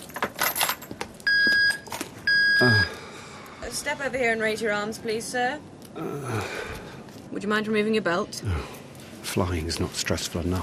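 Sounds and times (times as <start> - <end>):
keys and loose coins clattering into a tray at airport security: 0.0 - 2.1
speech: 2.6 - 2.9, 3.8 - 6.8, 7.4 - 10.6.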